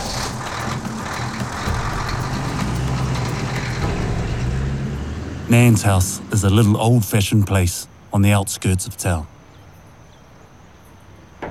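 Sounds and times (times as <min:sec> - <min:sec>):
faint rattles: 0:00.0 - 0:06.5
truck engine rumbling as the vehicle drives off: 0:00.0 - 0:09.2
road noise: 0:00.0 - 0:11.4
speech: 0:05.5 - 0:09.4.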